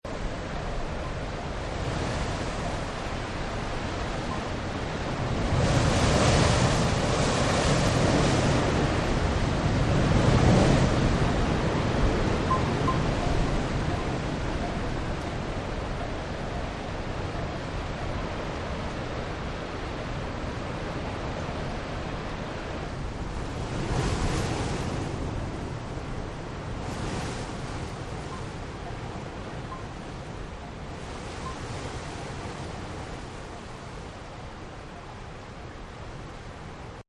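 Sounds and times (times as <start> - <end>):
heavy wind: 0.0 - 37.0
wind chimes in heavy wind: 12.4 - 15.3.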